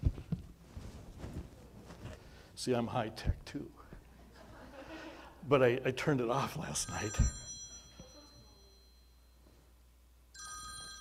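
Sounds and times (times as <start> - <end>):
quiet hum: 0.0 - 10.9
speech: 2.6 - 3.8, 5.5 - 7.4
laughter: 4.2 - 5.4
old-fashioned telephone bell ringing: 6.8 - 9.4, 10.3 - 10.9.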